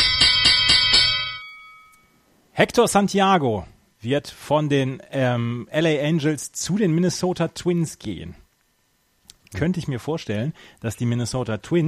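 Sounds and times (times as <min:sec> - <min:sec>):
bell ringing rapidly: 0:00.0 - 0:02.0
speech: 0:02.6 - 0:08.4, 0:09.5 - 0:11.8.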